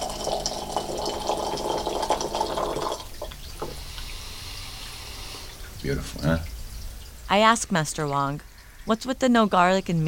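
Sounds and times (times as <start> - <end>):
Pu'er tea pouring into tiny cups: 0.0 - 6.4
faint drips of tea: 0.0 - 10.0
speech: 5.8 - 6.5, 7.3 - 10.0.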